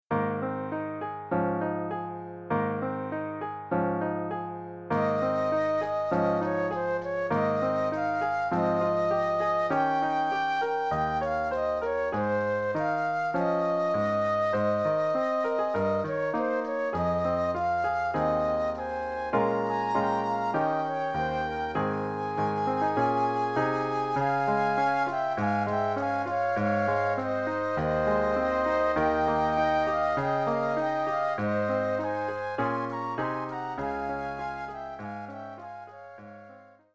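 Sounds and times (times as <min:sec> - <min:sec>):
flute: 0:00.1 - 0:36.9
piano: 0:00.1 - 0:36.9.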